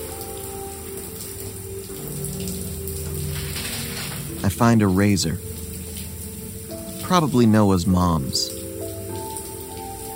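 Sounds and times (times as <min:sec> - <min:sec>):
shower running: 0:00.0 - 0:10.1
speech: 0:04.5 - 0:05.5, 0:07.1 - 0:08.6.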